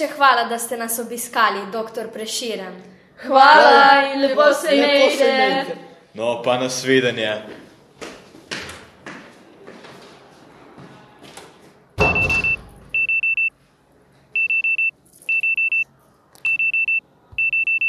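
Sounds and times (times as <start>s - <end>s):
speech: 0.0s - 7.6s
alarm clock electronic beeping: 12.1s - 13.5s, 14.4s - 15.8s, 16.5s - 17.8s.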